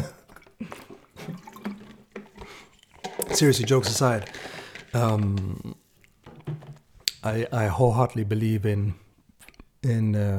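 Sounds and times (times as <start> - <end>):
person drinking from a water bottle with wet gulps: 0.0 - 7.1
speech: 3.4 - 5.7, 7.2 - 9.0, 9.8 - 10.3.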